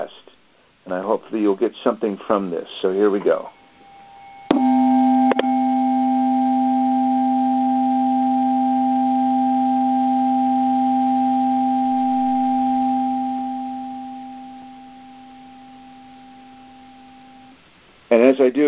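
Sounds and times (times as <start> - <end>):
speech: 0.9 - 3.6, 18.1 - 18.6
sustained mid-low pure healing tone played over the phone: 3.3 - 17.6.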